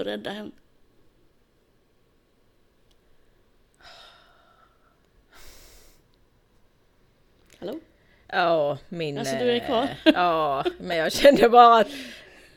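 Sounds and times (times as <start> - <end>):
speech: 0.0 - 0.6, 7.6 - 12.2
quiet hiss: 0.0 - 12.5
slow deep breathing in and out: 3.8 - 6.1.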